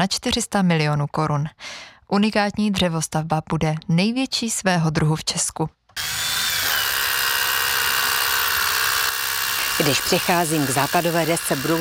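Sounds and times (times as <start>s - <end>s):
speech: 0.0s - 6.2s, 9.8s - 11.7s
power drill whining at a construction site: 6.0s - 11.7s.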